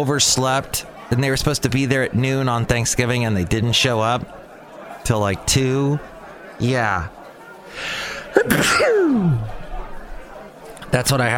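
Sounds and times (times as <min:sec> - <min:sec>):
speech: 0:00.0 - 0:04.4, 0:05.0 - 0:09.6, 0:10.9 - 0:11.3
loud sneeze: 0:08.4 - 0:09.4.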